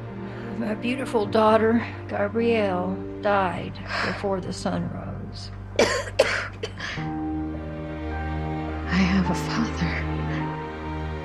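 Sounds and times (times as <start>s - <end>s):
low tonal hum: 0.0s - 11.2s
speech: 0.6s - 7.2s, 9.0s - 10.2s
woman coughing in a dramatic scene: 5.8s - 7.0s.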